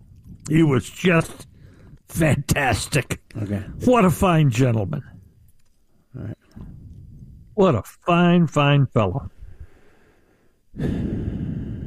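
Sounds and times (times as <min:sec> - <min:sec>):
speech: 0:00.5 - 0:01.5, 0:02.1 - 0:05.2, 0:06.1 - 0:06.4, 0:07.6 - 0:09.4, 0:10.8 - 0:11.3
deep breathing into a microphone: 0:01.5 - 0:02.1, 0:06.5 - 0:07.5, 0:09.3 - 0:11.8.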